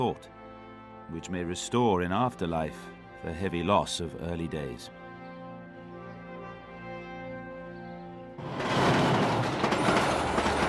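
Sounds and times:
speech: 0.0 - 0.4, 1.1 - 5.0
train rumbling along rails: 8.4 - 10.6.

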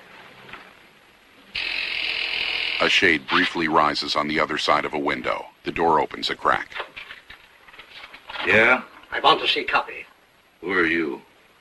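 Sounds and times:
door buzzer pressed at a dirty wooden door: 1.6 - 3.0
speech: 2.8 - 6.9, 8.4 - 11.6.

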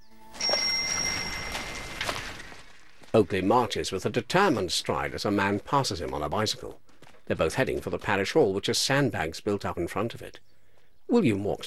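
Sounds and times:
church bell by a churchyard ringing: 0.3 - 2.8
speech: 3.1 - 10.5, 11.1 - 11.6.

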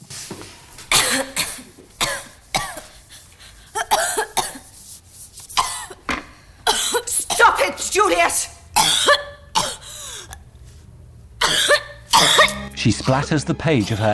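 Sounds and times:
girl coughing in harsh rasping bursts: 0.9 - 3.0, 3.7 - 4.7, 5.6 - 6.0, 6.7 - 7.8, 8.8 - 10.3, 11.4 - 13.2
speech: 12.8 - 14.1.

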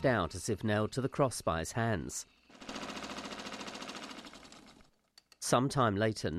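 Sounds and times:
speech: 0.0 - 3.0, 5.4 - 6.3
sewing machine running: 2.5 - 4.9.

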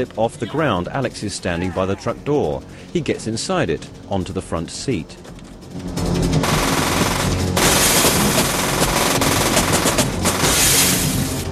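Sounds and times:
speech: 0.0 - 6.5
heavy gunfire in a shootout around a truck: 6.4 - 11.5.

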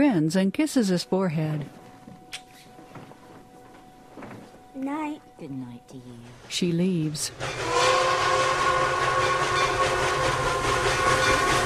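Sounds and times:
speech: 0.0 - 1.8, 4.8 - 9.4
steam train chugging with rhythmic puffing: 6.2 - 11.6
steam hissing: 7.4 - 11.6.

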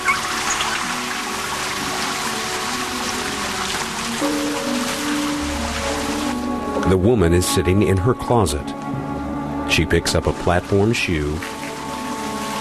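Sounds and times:
shower water running: 0.0 - 6.6, 10.0 - 12.5
speech: 6.9 - 8.9, 9.8 - 11.6.

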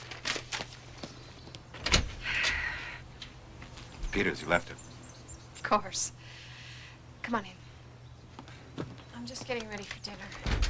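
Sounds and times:
door opening: 1.7 - 2.6, 9.6 - 10.6
door thump: 1.8 - 2.2, 10.4 - 10.6
speech: 4.2 - 4.9, 5.7 - 6.2, 7.3 - 7.6, 9.2 - 10.6.

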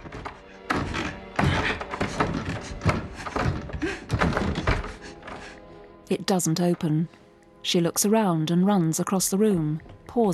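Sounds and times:
door thumping and rattling as doorknob is grabbed and door pulled desperately: 0.0 - 5.5
speech: 6.1 - 10.3.

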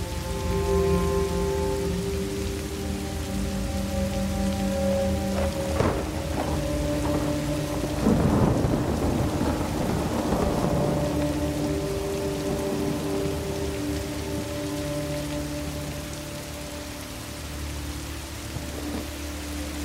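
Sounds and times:
heavy rain pouring on a path to a house: 0.0 - 19.8
thunder rumbling: 4.9 - 16.4.

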